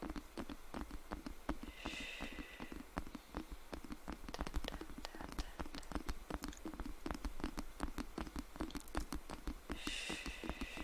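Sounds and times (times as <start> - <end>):
scratching and tapping: 0.0 - 10.8.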